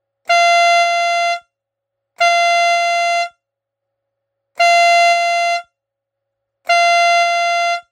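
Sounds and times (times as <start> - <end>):
12 V vacuum fanfare car horn: 0.3 - 1.5, 2.2 - 3.4, 4.6 - 5.8, 6.7 - 7.8.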